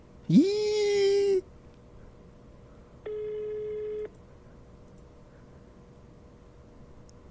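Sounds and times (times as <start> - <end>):
speech: 0.3 - 0.6
telephone ringback tone of an unanswered call: 3.1 - 4.1.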